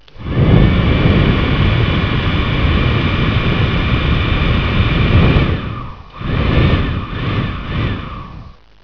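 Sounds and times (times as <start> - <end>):
hair dryer: 0.2 - 8.5.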